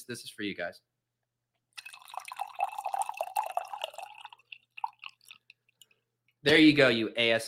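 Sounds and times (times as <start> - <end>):
speech: 0.0 - 0.9, 6.4 - 7.4
coffee being poured into a cup: 1.8 - 6.0.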